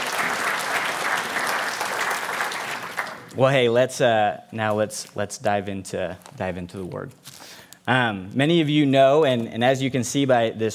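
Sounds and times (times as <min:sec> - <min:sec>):
crowd applauding: 0:00.0 - 0:03.3
speech: 0:03.4 - 0:07.3, 0:07.9 - 0:10.7.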